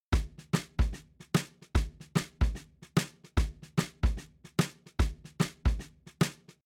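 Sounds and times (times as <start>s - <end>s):
shuffle drums: 0.1s - 6.6s.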